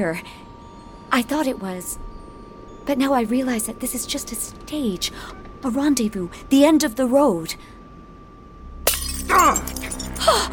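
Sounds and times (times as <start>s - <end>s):
speech: 0.0s - 0.4s, 1.1s - 2.1s, 2.8s - 7.8s
low hum: 0.0s - 10.5s
drinking glass breaking in a hand: 8.8s - 10.4s
glass fragments tinkling and ringing: 8.9s - 10.4s.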